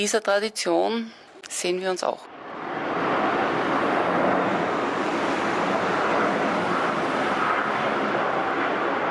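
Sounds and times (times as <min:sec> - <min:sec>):
speech: 0:00.0 - 0:02.3
steady loud airplane roar: 0:02.3 - 0:09.0.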